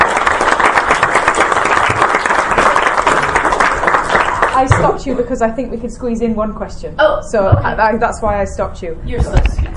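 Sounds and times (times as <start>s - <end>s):
crowd of many hands clapping: 0.0s - 4.8s
speech: 4.6s - 9.6s.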